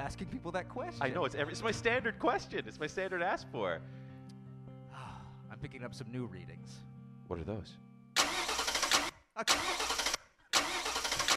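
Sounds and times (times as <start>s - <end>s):
speech: 0.1s - 4.0s, 5.6s - 7.8s, 9.4s - 9.9s
flooded car engine cranking: 8.2s - 11.3s.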